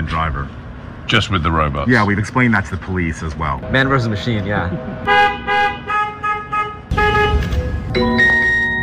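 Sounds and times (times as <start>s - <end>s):
low engine rumble: 0.0s - 8.8s
speech: 0.1s - 5.4s, 7.9s - 8.4s
robotaxi car horn honking at night: 3.6s - 8.8s.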